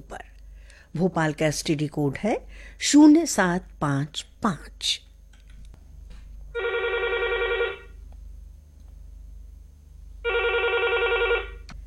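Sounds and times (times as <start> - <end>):
low hum: 0.0 - 11.8
speech: 0.9 - 5.1
telephone ringing with an electronic trill: 6.6 - 8.0, 10.2 - 11.7.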